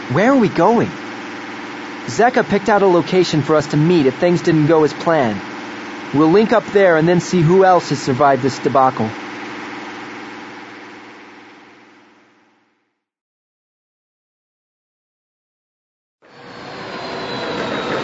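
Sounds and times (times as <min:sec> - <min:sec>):
fictional airspeeder engine roar swooping down into a small hangar: 0:00.0 - 0:12.4, 0:16.2 - 0:18.0
speech: 0:00.1 - 0:01.1, 0:02.1 - 0:05.5, 0:06.1 - 0:09.2.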